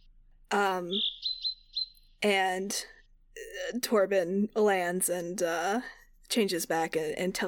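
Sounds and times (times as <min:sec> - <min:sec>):
bird chirping: 0:00.0 - 0:02.3
speech: 0:00.5 - 0:01.2, 0:02.2 - 0:07.4.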